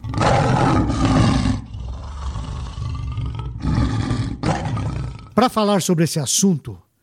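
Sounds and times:
lion roaring: 0.0 - 5.4
speech: 5.4 - 6.8.

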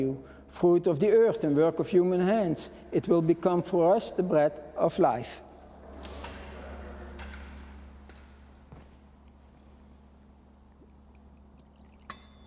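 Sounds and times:
speech: 0.0 - 5.5
water poured into wine in a chalice during Mass: 11.1 - 12.4
metallic clink: 12.0 - 12.4.

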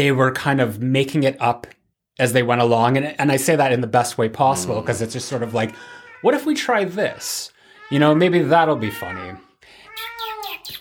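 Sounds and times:
speech: 0.0 - 9.4
cat meowing: 4.5 - 10.7.

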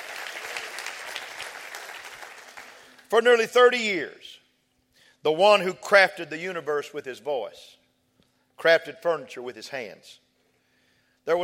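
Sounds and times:
audience applause in a church during a sermon: 0.0 - 3.1
speech: 3.1 - 4.4, 5.2 - 7.8, 8.6 - 10.2, 11.2 - 11.4.

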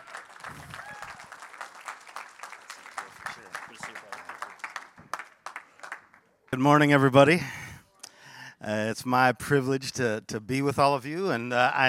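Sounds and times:
audience applause: 0.0 - 6.2
speech: 6.5 - 7.6, 8.7 - 11.8.

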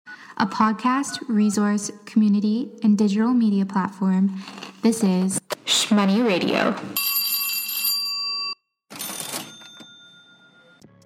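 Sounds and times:
speech: 0.4 - 7.0
cash register sound effect bell ring: 7.0 - 10.8
cash register drawer rattling mechanical clatter: 8.9 - 10.0.

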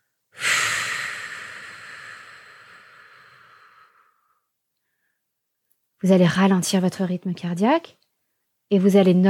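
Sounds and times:
long slow calming breath in through the nose and out through the mouth: 0.3 - 5.3
speech: 6.0 - 8.0, 8.7 - 9.2.

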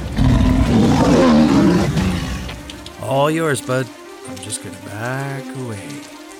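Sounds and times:
mountain lion roaring: 0.2 - 2.6
speech: 3.1 - 6.2.

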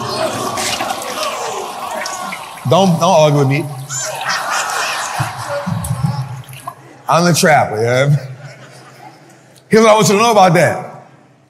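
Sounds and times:
toilet flushing: 0.0 - 6.8
laughter: 0.0 - 10.2
speech: 2.6 - 4.1, 7.1 - 8.3, 9.7 - 10.9.

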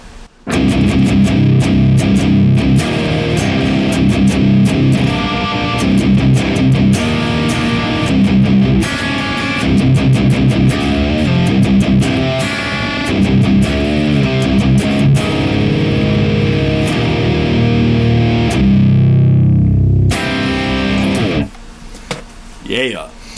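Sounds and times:
heavily distorted electric guitar riffs through amp simulator: 0.4 - 21.6.

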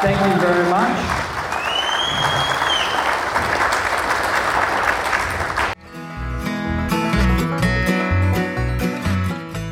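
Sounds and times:
speech: 0.0 - 1.1
applause: 0.0 - 5.8
upbeat music with a strong bass line: 5.8 - 9.7.

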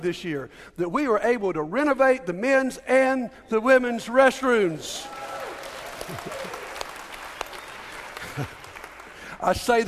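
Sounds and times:
speech: 0.0 - 5.2, 6.1 - 6.6, 8.4 - 8.6, 9.4 - 9.8
audience applause in church: 5.0 - 9.4.

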